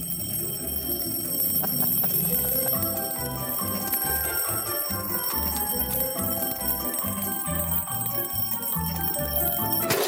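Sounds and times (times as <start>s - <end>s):
alarm clock ringing: 0.0s - 9.9s.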